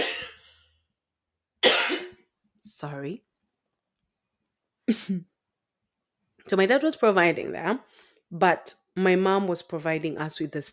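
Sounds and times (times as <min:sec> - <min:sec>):
person coughing harshly: 0:00.0 - 0:00.5, 0:01.6 - 0:02.2
speech: 0:02.7 - 0:03.3, 0:04.9 - 0:05.3, 0:06.5 - 0:10.7.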